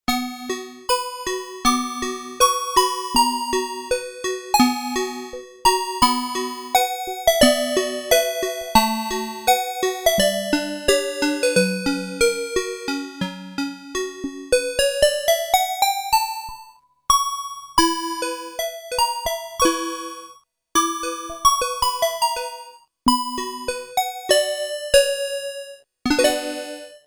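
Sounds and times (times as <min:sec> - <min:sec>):
toy piano on a Korg DW-8000 synthesizer: 0:00.7 - 0:16.8, 0:18.2 - 0:27.0.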